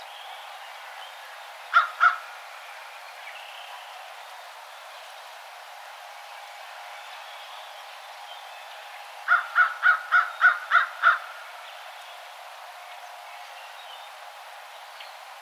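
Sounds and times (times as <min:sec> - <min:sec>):
American crow cawing: 0:09.3 - 0:11.3.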